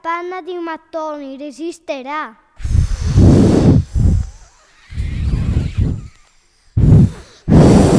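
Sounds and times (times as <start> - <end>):
speech: 0.2 - 2.4
person imitating a wolf huffing and blowing at a brick house: 2.6 - 7.9.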